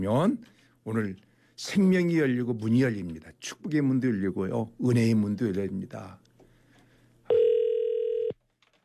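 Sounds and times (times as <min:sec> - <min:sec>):
speech: 0:00.0 - 0:06.2
telephone ringback tone while calling a landline: 0:07.3 - 0:08.4.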